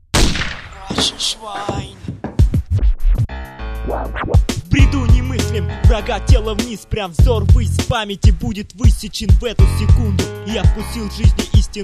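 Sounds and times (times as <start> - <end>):
gunshot sound effect bangs: 0.1 - 1.4
speech: 1.0 - 2.0, 3.9 - 11.8.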